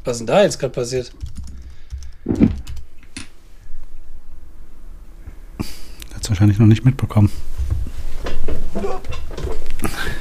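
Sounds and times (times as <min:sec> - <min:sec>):
speech: 0:00.0 - 0:01.3, 0:06.4 - 0:07.5
keystrokes on a computer keyboard typing a chat message: 0:01.2 - 0:02.8.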